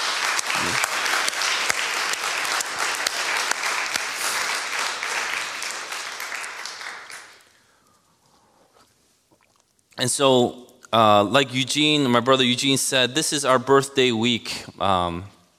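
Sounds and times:
large crowd applauding as a clap offering: 0.0 - 7.5
speech: 10.0 - 15.3.

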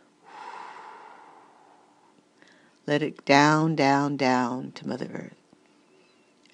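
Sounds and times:
long soft airy exhale during a guided grounding breathing exercise: 0.2 - 2.8
speech: 2.9 - 5.4.

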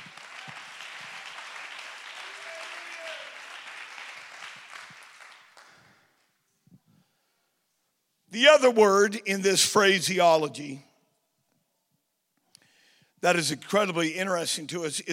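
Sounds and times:
crowd applauding: 0.0 - 6.2
speech: 8.4 - 10.9, 13.2 - 15.1.

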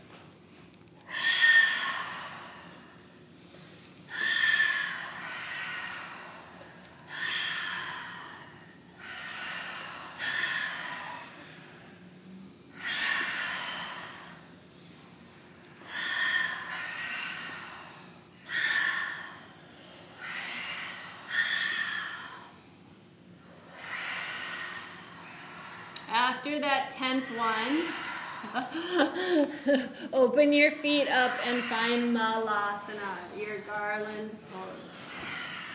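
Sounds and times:
deep breathing for a breathing exercise: 1.0 - 35.7
speech: 26.3 - 34.4.

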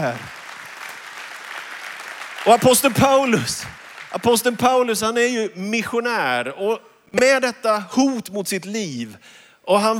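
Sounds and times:
speech: 0.0 - 0.4, 2.4 - 9.9
audience clapping: 0.0 - 5.2.

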